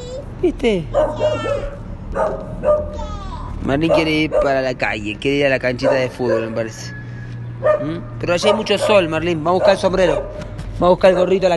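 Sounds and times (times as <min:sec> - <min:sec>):
speech: 0:00.4 - 0:07.0, 0:07.6 - 0:11.5
dachshund barking and yipping: 0:01.0 - 0:03.0, 0:03.8 - 0:04.7, 0:05.8 - 0:07.0, 0:07.6 - 0:11.4.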